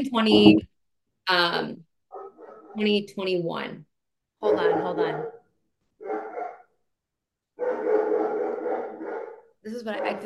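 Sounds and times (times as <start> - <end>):
speech: 0.0 - 0.7, 1.3 - 1.9, 2.8 - 5.4, 9.6 - 10.2
dog barking: 2.1 - 2.8, 4.4 - 6.7, 7.6 - 10.2.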